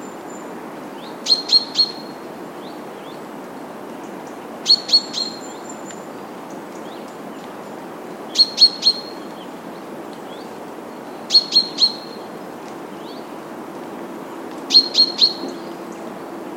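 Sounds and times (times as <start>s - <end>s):
background hiss: 0.0s - 16.5s
common chaffinch Fringilla coelebs calling: 1.2s - 2.2s, 4.6s - 5.6s, 8.3s - 9.2s, 11.3s - 12.3s, 14.7s - 16.1s.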